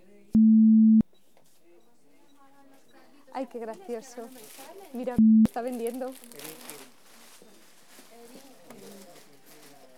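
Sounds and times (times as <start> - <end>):
card payment terminal beeping during PIN entry: 0.4 - 1.0, 5.2 - 5.5
speech: 3.4 - 6.6.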